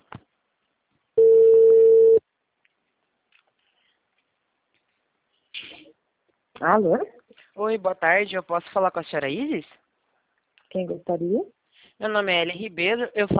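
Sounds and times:
telephone ringing tone during an outgoing call: 1.2s - 2.2s
speech: 6.6s - 9.8s, 10.7s - 13.3s.

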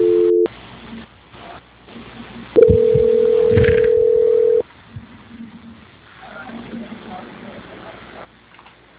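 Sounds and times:
steady single-pitched telephone call transfer tone: 0.0s - 0.5s, 2.6s - 4.6s.

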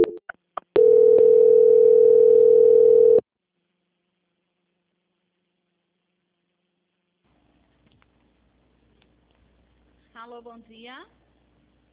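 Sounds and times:
telephone line clicks while a call is being transferred: 0.8s - 3.2s
speech: 10.4s - 11.2s.

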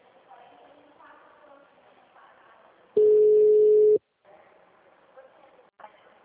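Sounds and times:
people talking: 0.0s - 6.2s
telephone tone as a call is placed from a phone box: 3.0s - 4.0s.

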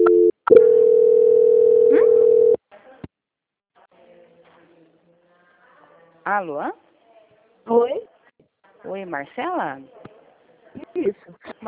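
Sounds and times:
telephone line tone during a call transfer: 0.0s - 2.6s
speech: 6.4s - 6.8s, 8.8s - 10.0s, 11.1s - 11.6s.

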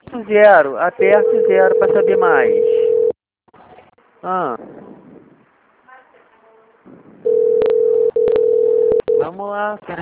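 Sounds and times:
speech: 0.2s - 2.8s, 4.2s - 4.8s, 9.3s - 10.0s
telephone line ringing with a steady low continuous tone: 1.2s - 3.2s, 7.2s - 9.2s.

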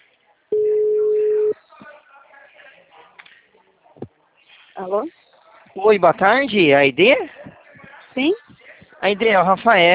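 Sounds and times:
telephone busy signal on a call not connecting: 0.5s - 1.6s
speech: 4.8s - 5.2s, 5.8s - 7.4s, 8.2s - 9.9s.

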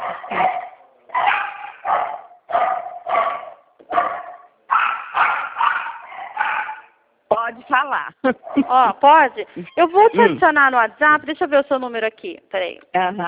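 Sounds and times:
dogs barking sharp yappy barks: 0.0s - 7.0s, 8.4s - 9.0s
speech: 7.7s - 13.2s.

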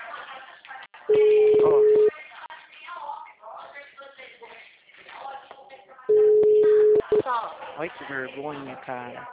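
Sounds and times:
telephone ringback tone: 1.1s - 2.1s, 6.1s - 7.2s
speech: 7.8s - 9.3s.

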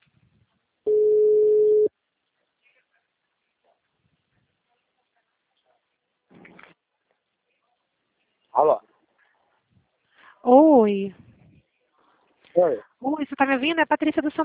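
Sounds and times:
telephone ringback tone while calling a client: 0.9s - 1.9s
speech: 8.6s - 8.9s, 10.4s - 11.2s, 12.6s - 14.4s.

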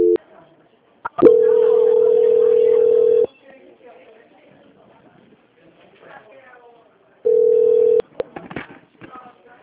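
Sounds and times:
telephone tone beeps during a call transfer: 0.0s - 0.2s, 1.2s - 3.3s, 7.3s - 8.0s
faint noise: 0.0s - 9.6s.

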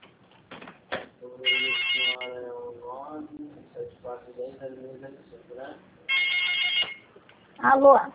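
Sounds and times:
telephone ringing during a call: 1.4s - 2.4s, 6.1s - 7.1s
speech: 2.2s - 6.4s, 7.6s - 8.1s.

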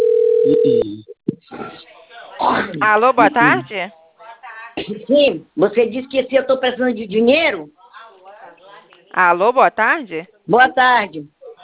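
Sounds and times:
telephone dial tone after dialing: 0.0s - 0.8s
speech: 0.6s - 1.2s, 2.4s - 4.0s, 4.8s - 7.8s, 9.1s - 11.3s.

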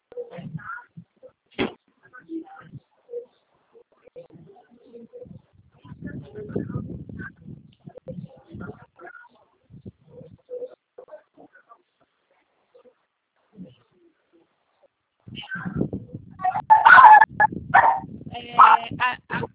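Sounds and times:
faint scattered noises: 0.0s - 19.5s
dog barking loudly: 16.4s - 18.0s, 18.6s - 18.8s.

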